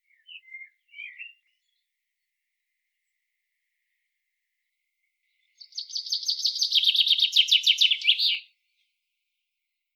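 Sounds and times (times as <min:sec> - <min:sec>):
common chaffinch Fringilla coelebs song: 0:00.0 - 0:01.8, 0:05.6 - 0:08.4.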